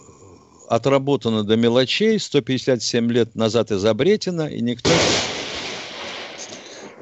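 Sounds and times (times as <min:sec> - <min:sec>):
speech: 0:00.7 - 0:05.3
loud clap of thunder: 0:04.9 - 0:07.0.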